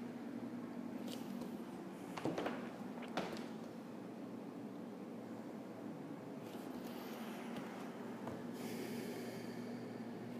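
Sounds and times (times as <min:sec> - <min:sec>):
faint steady low hum: 0:00.0 - 0:10.3
slow deep yogic breathing with the mouth closed: 0:06.7 - 0:10.3.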